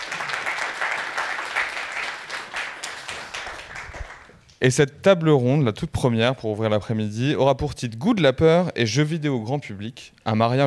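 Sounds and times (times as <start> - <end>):
audience applause: 0.0 - 4.4
speech: 4.6 - 10.6.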